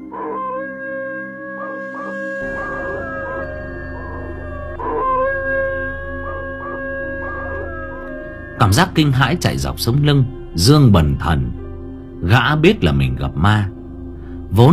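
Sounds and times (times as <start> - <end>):
dog howling: 0.0 - 8.8
speech: 8.6 - 11.6, 12.2 - 13.7, 14.5 - 14.7.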